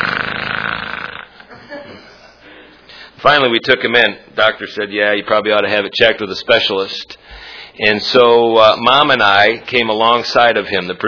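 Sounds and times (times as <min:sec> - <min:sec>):
voice imitating a one-year-old child's snoring: 0:00.0 - 0:01.4
speech: 0:03.2 - 0:07.2, 0:07.8 - 0:11.0.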